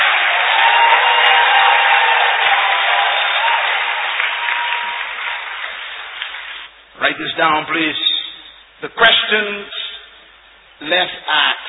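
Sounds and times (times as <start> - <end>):
audience clapping: 0.0 - 6.7
speech: 7.1 - 8.1, 8.8 - 9.8, 10.8 - 11.6.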